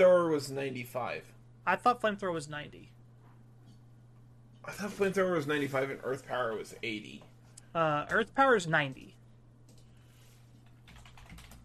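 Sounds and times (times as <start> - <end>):
speech: 0.0 - 3.0, 4.6 - 9.2
steady low electrical hum: 0.0 - 11.6
typing on a computer keyboard: 10.7 - 11.6.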